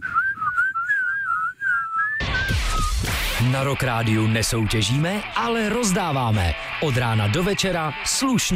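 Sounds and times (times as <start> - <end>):
person whistling a warbling tune: 0.0 - 3.1
loud broadband noise burst: 2.2 - 8.5
speech: 3.4 - 8.5.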